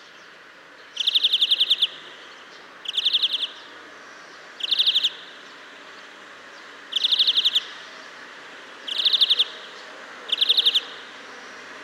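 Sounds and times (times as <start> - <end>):
European greenfinch Chloris chloris calls: 1.0 - 2.0, 2.8 - 3.6, 4.6 - 5.2, 6.9 - 7.7, 8.9 - 9.7, 10.3 - 11.0.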